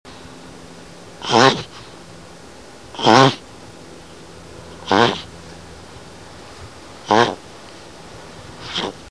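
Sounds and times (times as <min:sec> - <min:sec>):
turtle voice: 0:01.2 - 0:01.7, 0:02.9 - 0:03.4, 0:04.8 - 0:05.3, 0:07.0 - 0:07.4, 0:08.6 - 0:09.0.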